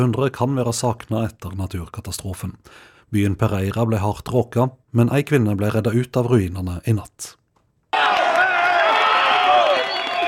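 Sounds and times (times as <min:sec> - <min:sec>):
speech: 0:00.0 - 0:08.1
dense crowd cheering and shouting: 0:07.9 - 0:10.2.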